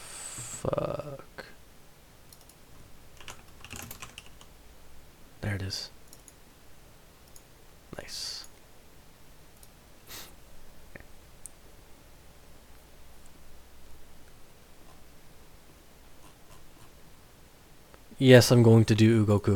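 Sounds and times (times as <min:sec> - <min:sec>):
steady hiss: 0:00.0 - 0:19.5
speech: 0:00.6 - 0:01.3, 0:05.7 - 0:06.0, 0:18.2 - 0:19.5
computer keyboard typing: 0:02.3 - 0:02.6, 0:03.2 - 0:04.5, 0:06.1 - 0:06.4.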